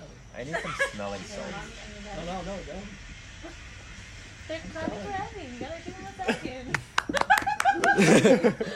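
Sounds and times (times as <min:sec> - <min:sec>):
people chattering: 0:00.0 - 0:08.7
speech: 0:00.4 - 0:03.6, 0:04.5 - 0:08.7
laughter: 0:06.2 - 0:08.7
audience clapping: 0:06.7 - 0:08.3.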